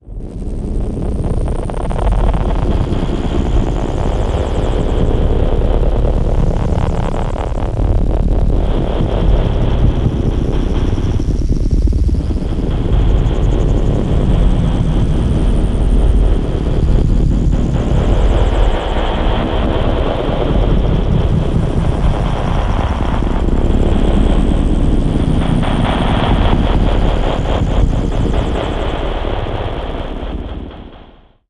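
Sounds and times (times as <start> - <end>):
cinematic trailer ambience: 0.2 - 31.4.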